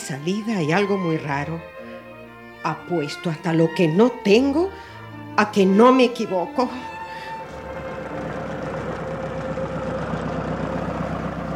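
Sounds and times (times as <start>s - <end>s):
speech: 0.1s - 1.7s, 2.6s - 7.0s
car engine rumbling with a faint whine: 6.8s - 11.5s.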